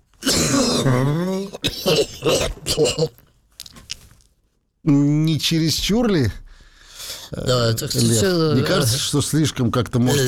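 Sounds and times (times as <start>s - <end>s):
person imitating a deep guttural cough: 0.2s - 3.2s
speech: 0.8s - 1.3s, 1.9s - 3.2s, 4.8s - 6.4s, 7.3s - 10.2s.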